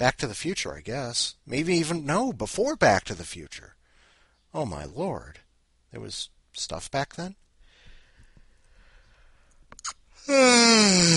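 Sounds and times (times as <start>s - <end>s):
speech: 0.0s - 3.8s, 4.5s - 7.4s, 9.8s - 11.1s
loud yawn: 9.8s - 11.1s.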